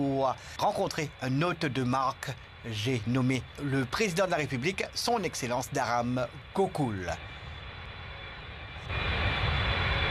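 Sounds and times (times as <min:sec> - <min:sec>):
speech: 0:00.0 - 0:07.4
airplane taking off: 0:00.0 - 0:10.0.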